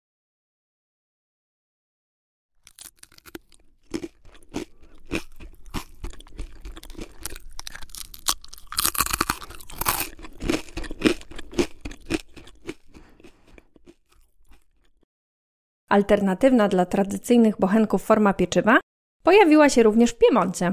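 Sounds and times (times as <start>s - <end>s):
thin crunchy Sardinian flatbread being bitten and chewed: 2.6s - 15.0s
speech: 15.9s - 20.7s.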